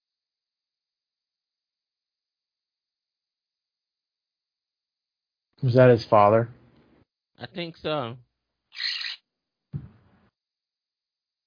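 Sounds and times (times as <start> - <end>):
speech: 5.6 - 6.6, 7.4 - 9.0
bird calling with short harsh notes: 8.7 - 9.2.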